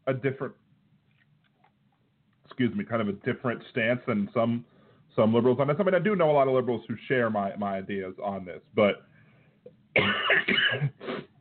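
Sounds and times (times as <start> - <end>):
speech: 0.1 - 0.7, 2.6 - 11.2
person coughing after swallowing something the wrong way: 10.0 - 11.3
throat clearing after swallowing something the wrong way: 10.0 - 11.3.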